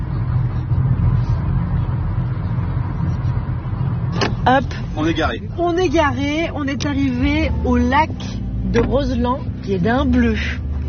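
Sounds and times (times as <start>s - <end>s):
car engine rumble: 0.0s - 10.8s
road noise from a driving car: 0.0s - 10.8s
speech: 4.5s - 10.8s.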